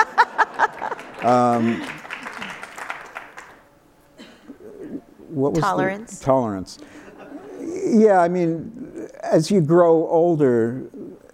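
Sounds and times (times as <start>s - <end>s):
laughter: 0.0s - 2.8s, 6.9s - 8.2s
audience applause: 0.0s - 3.6s
speech: 1.2s - 1.9s, 5.4s - 6.9s, 7.9s - 11.0s.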